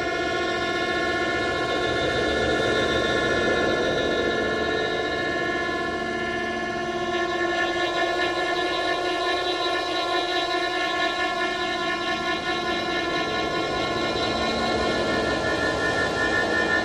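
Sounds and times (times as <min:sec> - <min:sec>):
industrial machine: 0:00.2 - 0:16.8.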